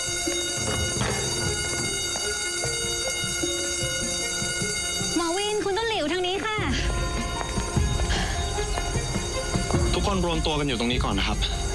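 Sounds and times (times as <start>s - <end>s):
fire alarm ringing: 0.0s - 6.1s, 6.7s - 11.7s
knocks and clatter: 0.2s - 2.3s
speech: 10.1s - 11.6s.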